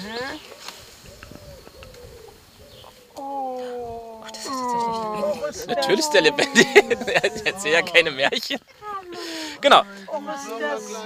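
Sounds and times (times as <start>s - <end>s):
speech: 0.0s - 0.8s, 5.5s - 8.9s, 9.6s - 11.0s
soft outdoor noise: 0.0s - 11.0s
dove cooing: 1.0s - 8.0s
laughter: 4.2s - 9.6s.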